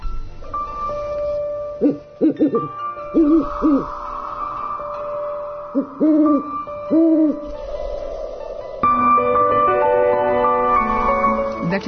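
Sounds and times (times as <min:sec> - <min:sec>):
musical background with sustained tones: 0:00.0 - 0:11.8
speech: 0:01.8 - 0:04.0, 0:05.8 - 0:07.7
owl hooting: 0:01.8 - 0:09.3.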